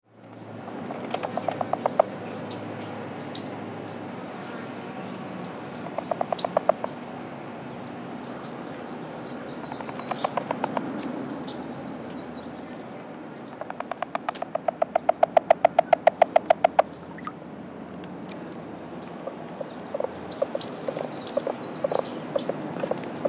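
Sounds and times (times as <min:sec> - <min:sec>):
rluteiventris frog calling in the air: 0:00.8 - 0:02.6, 0:05.8 - 0:07.1, 0:09.6 - 0:11.1, 0:13.4 - 0:17.4, 0:19.0 - 0:23.2.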